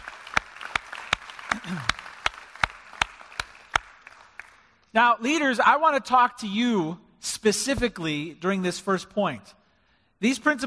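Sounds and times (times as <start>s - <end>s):
one sharp steady clap above softer clapping: 0.0s - 4.8s
speech: 1.6s - 2.0s, 4.9s - 9.6s, 10.2s - 10.6s.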